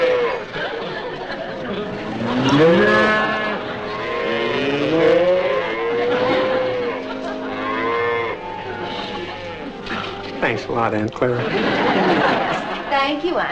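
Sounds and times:
cows mooing: 0:00.0 - 0:10.3
laughter: 0:00.0 - 0:13.5
speech: 0:10.7 - 0:13.5.

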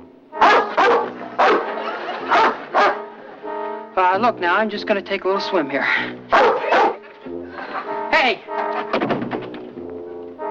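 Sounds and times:
big dog barking with deep woofs: 0:00.4 - 0:03.3, 0:06.2 - 0:07.2
laughter: 0:00.9 - 0:03.6, 0:06.6 - 0:09.0
speech: 0:04.0 - 0:06.5, 0:08.1 - 0:09.1.

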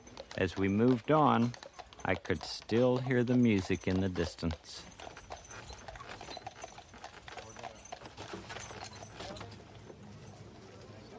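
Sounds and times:
horse hooves clip-clopping while pulling a carriage: 0:00.0 - 0:11.1
speech: 0:00.4 - 0:04.9.

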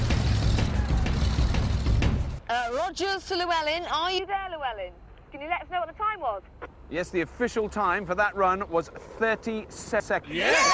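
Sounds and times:
tracked vehicle V8 engine powering through a swamp: 0:00.0 - 0:02.4
speech: 0:02.8 - 0:10.7.

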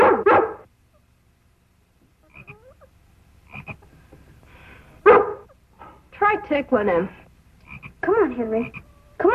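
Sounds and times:
dog barking loudly: 0:00.0 - 0:00.7, 0:05.0 - 0:05.6
quiet croaking squeaky sounds: 0:02.0 - 0:04.1, 0:07.6 - 0:09.3
speech: 0:06.3 - 0:07.2, 0:08.1 - 0:09.3.

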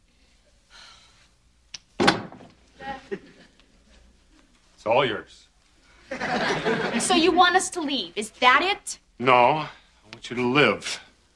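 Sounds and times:
heavier wooden door thump as it swings: 0:02.0 - 0:02.5
laughter: 0:02.8 - 0:04.0, 0:06.0 - 0:07.4
speech: 0:04.8 - 0:05.5, 0:06.3 - 0:11.3.

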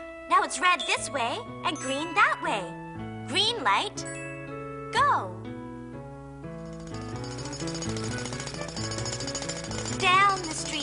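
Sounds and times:
speech: 0:00.4 - 0:04.2, 0:04.9 - 0:05.5
jackhammer drilling holes in the road during road repair work: 0:06.6 - 0:10.8.

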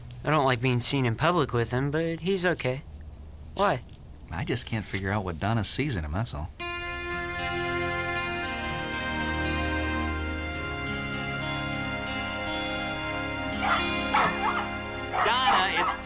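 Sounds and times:
speech: 0:00.2 - 0:02.9, 0:03.6 - 0:06.6
sustained musical tones: 0:06.6 - 0:16.0
dog barking: 0:13.6 - 0:16.0.

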